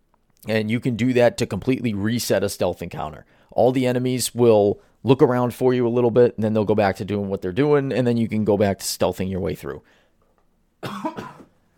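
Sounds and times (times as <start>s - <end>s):
speech: 0.4s - 10.0s
person coughing: 10.8s - 11.6s.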